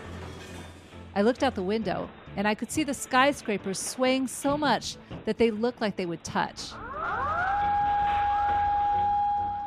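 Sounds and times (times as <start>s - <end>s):
speech: 1.2s - 6.8s
tsunami warning emergency siren wailing in Tokyo Japan: 6.7s - 9.6s.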